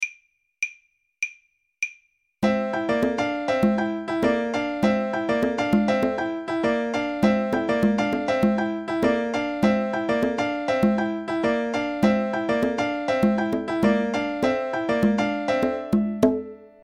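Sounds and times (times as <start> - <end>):
bongos: 2.4 - 6.3, 7.2 - 16.8.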